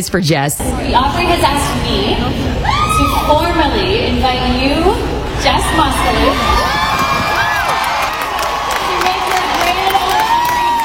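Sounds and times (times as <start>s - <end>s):
speech: 0.0s - 6.8s
large crowd cheering and screaming: 2.5s - 3.5s, 5.4s - 10.8s.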